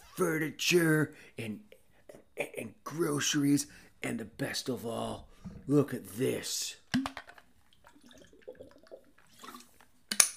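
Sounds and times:
speech: 0:00.2 - 0:01.7, 0:02.4 - 0:07.1
water gurgling: 0:07.7 - 0:09.8.

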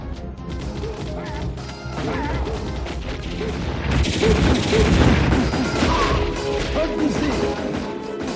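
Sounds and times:
video game gunfire: 0:00.4 - 0:08.3
crashes and booms as targets are shot down: 0:02.0 - 0:07.8.

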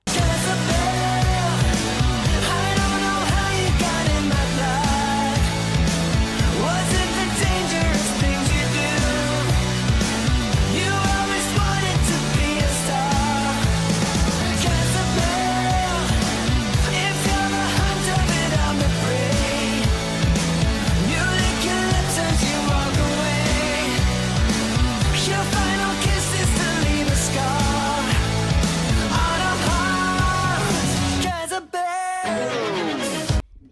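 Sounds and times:
Finnish rock song: 0:00.0 - 0:33.4.

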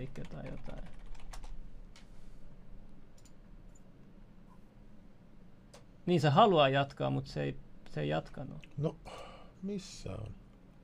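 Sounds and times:
speech: 0:00.0 - 0:01.0, 0:06.1 - 0:10.4
typing on a computer keyboard while a news item is edited: 0:00.0 - 0:01.6.

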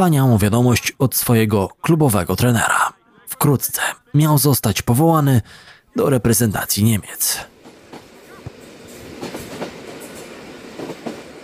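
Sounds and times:
speech: 0:00.0 - 0:07.5
train rolling along the rails: 0:07.3 - 0:11.4.

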